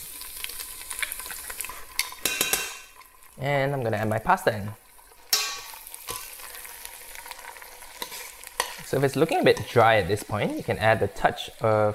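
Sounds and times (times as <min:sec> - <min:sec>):
pesto sizzling with oil in a pan: 0:00.0 - 0:11.9
spoon stirring and scraping a pan: 0:00.9 - 0:03.0, 0:05.3 - 0:11.0
speech: 0:03.4 - 0:04.8, 0:08.9 - 0:11.9.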